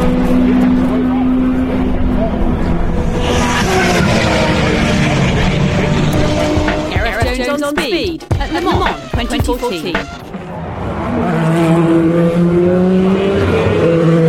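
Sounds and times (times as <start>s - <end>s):
racing cars screaming past at the Porsche Curves, Le Mans: 0.0s - 6.9s, 10.5s - 14.2s
racing car engine revving and gear changes: 0.0s - 14.2s
laughter: 7.0s - 10.1s.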